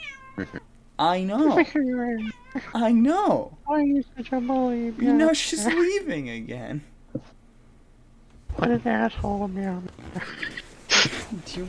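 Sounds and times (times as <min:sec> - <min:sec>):
brief soft cat chirp: 0:00.0 - 0:00.6
cat meowing: 0:00.0 - 0:00.7, 0:02.2 - 0:02.7
speech: 0:00.4 - 0:07.4, 0:08.6 - 0:10.5, 0:11.3 - 0:11.6.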